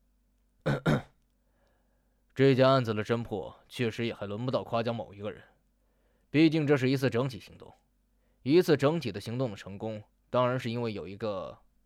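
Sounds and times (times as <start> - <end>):
throat clearing in rasping bursts: 0.6 - 1.2
speech: 2.4 - 5.5, 6.3 - 7.8, 8.4 - 11.6.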